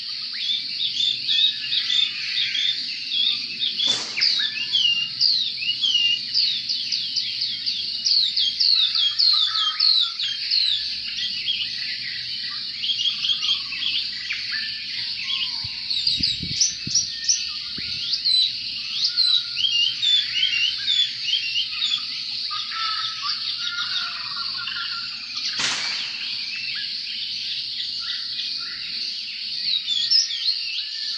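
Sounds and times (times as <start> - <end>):
Oriental magpie-robin song of rapid varied whistles and chirps: 0.3 - 31.1
sharp click: 3.8 - 4.9, 25.6 - 26.8.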